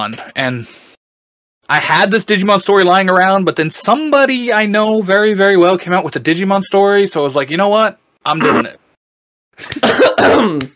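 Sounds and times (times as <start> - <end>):
speech: 0.0 - 0.8, 1.7 - 8.8, 9.6 - 10.7
loud raspy throat clearing: 8.4 - 8.8, 9.7 - 10.7.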